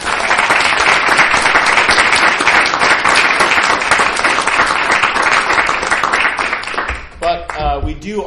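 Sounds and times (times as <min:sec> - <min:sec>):
room full of people applauding: 0:00.0 - 0:07.7
speech: 0:08.0 - 0:08.2.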